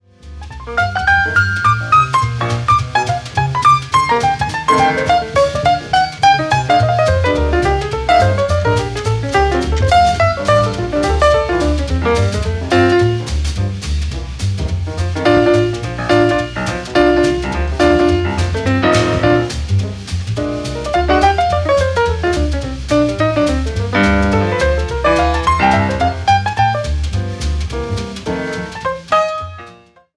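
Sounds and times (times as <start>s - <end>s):
jazz piano: 0.0s - 30.1s.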